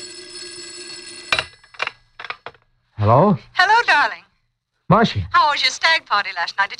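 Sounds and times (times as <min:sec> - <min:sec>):
shrill telephone bell ringing: 0:00.0 - 0:02.2
speech: 0:03.0 - 0:04.1, 0:04.9 - 0:06.7.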